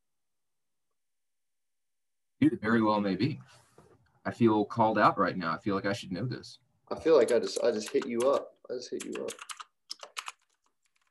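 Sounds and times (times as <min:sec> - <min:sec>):
speech: 0:02.4 - 0:03.6, 0:04.2 - 0:09.6
typing on a computer keyboard: 0:07.2 - 0:11.1.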